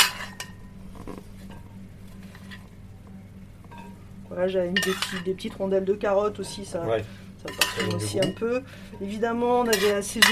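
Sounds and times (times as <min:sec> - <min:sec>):
spoon clinking and scraping against a pot while spooning beans over sausage: 0:00.0 - 0:02.7, 0:04.8 - 0:05.4, 0:07.4 - 0:08.4, 0:09.6 - 0:10.3
speech: 0:04.4 - 0:10.3.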